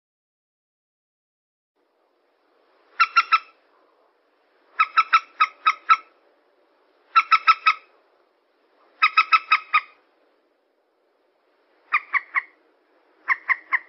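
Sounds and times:
yellow-vented bulbul chatter: 0:02.9 - 0:03.6, 0:04.7 - 0:06.2, 0:07.1 - 0:07.9, 0:09.0 - 0:10.0, 0:11.8 - 0:12.6, 0:13.2 - 0:13.8.

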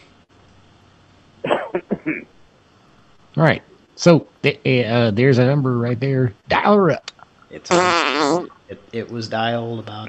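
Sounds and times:
person coughing: 0:01.4 - 0:02.3
speech: 0:01.8 - 0:02.4, 0:03.4 - 0:10.0.

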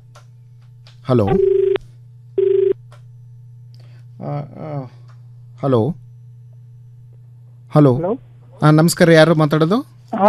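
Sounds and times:
constant low hum: 0:00.0 - 0:10.2
speech: 0:01.0 - 0:01.6, 0:04.2 - 0:05.0, 0:05.6 - 0:06.0, 0:07.7 - 0:10.2
telephone call connecting beep on a radio phone-in: 0:01.3 - 0:01.8, 0:02.4 - 0:02.8.

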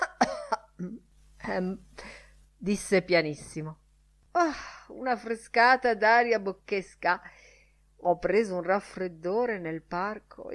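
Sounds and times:
person imitating a loud cough: 0:00.0 - 0:00.8
speech: 0:00.8 - 0:03.8, 0:04.4 - 0:07.4, 0:08.0 - 0:10.5.

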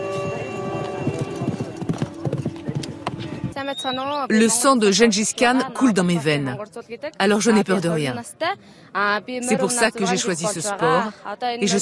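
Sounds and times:
horse hooves at a mounted archery contest at traditional nomad games: 0:00.0 - 0:03.7
speech: 0:03.7 - 0:11.8.

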